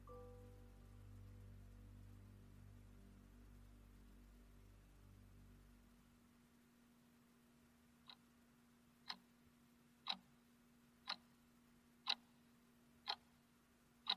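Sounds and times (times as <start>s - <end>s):
faint constant low hum: 0.0s - 14.1s
clock ticking: 8.0s - 8.3s, 9.0s - 9.3s, 10.0s - 10.3s, 11.0s - 11.4s, 12.0s - 13.4s, 14.0s - 14.1s.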